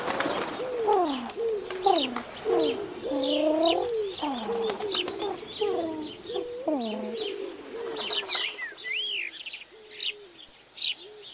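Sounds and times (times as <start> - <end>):
doves cooing: 0.0 - 8.7.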